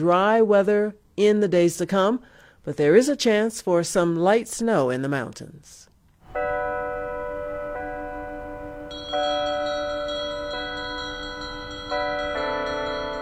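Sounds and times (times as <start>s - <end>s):
speech: 0.0s - 6.7s
church bells ringing: 6.3s - 13.2s.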